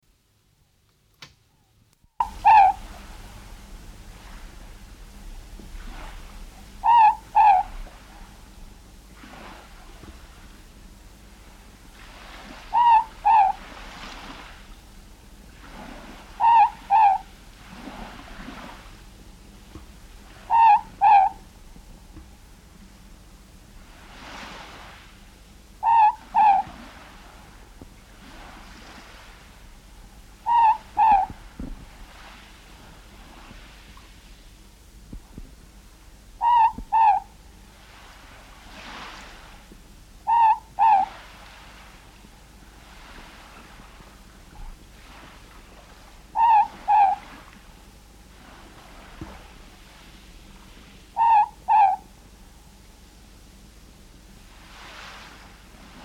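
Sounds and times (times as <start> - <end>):
morepork song: 1.5 - 10.3, 12.4 - 14.9, 15.8 - 18.9, 20.1 - 21.6, 25.7 - 27.4, 30.3 - 31.9, 36.4 - 37.7, 40.2 - 41.7, 46.0 - 47.6, 51.0 - 52.7.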